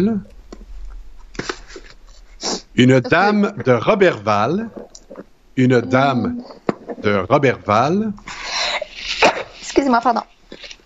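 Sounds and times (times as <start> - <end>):
speech: 0.0 - 0.3, 2.8 - 8.4, 9.8 - 10.4
sneeze: 9.1 - 9.7.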